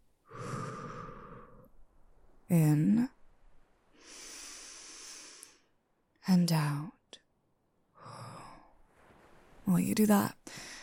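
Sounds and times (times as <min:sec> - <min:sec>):
deep breathing in and out: 0:00.2 - 0:01.9, 0:03.9 - 0:05.8, 0:10.4 - 0:10.8
speech: 0:02.5 - 0:03.2, 0:06.3 - 0:07.0, 0:09.7 - 0:10.6.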